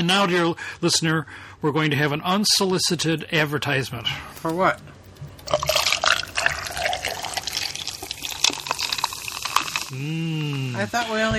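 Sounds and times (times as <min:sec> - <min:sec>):
speech: 0:00.0 - 0:04.9, 0:09.9 - 0:11.3
non-alcoholic drink poured over ice: 0:05.5 - 0:10.0.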